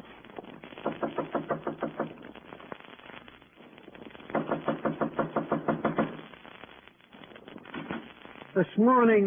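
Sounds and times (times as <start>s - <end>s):
rapid sharp knocking on a door: 0.9s - 2.2s, 4.3s - 6.2s
speech: 8.8s - 9.2s.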